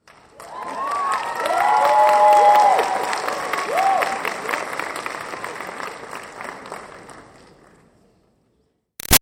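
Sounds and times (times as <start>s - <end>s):
graduation audience applause and cheers in an auditorium: 0.0s - 6.8s.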